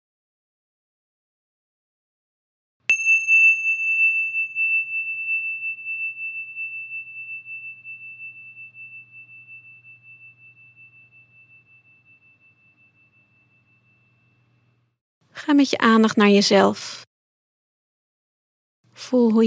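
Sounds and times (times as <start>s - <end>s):
single bell strike ringing: 2.9s - 14.9s
speech: 15.5s - 17.0s, 19.1s - 19.4s.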